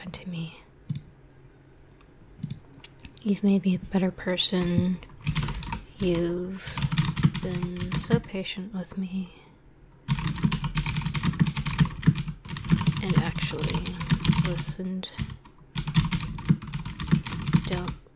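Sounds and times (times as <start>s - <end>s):
speech: 3.2s - 5.1s, 6.0s - 6.8s, 7.4s - 9.4s, 13.2s - 15.3s, 17.7s - 18.0s
computer keyboard typing: 5.2s - 8.3s, 10.1s - 18.1s.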